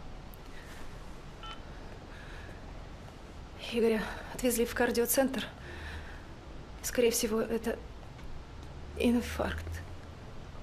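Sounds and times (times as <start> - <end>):
low hiss: 0.0 - 10.6
telephone keypad tones as a number is dialed: 1.4 - 1.6
speech: 3.7 - 5.8, 6.8 - 7.9, 9.0 - 9.8.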